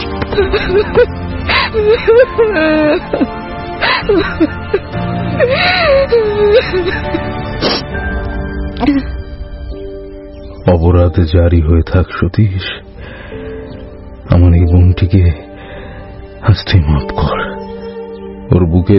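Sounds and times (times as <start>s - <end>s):
woman weeping face down on a bed: 0.2s - 7.6s
speech: 0.4s - 3.4s, 4.0s - 8.1s, 8.8s - 9.2s, 10.6s - 12.9s, 14.3s - 15.4s, 16.4s - 17.5s, 18.5s - 18.9s.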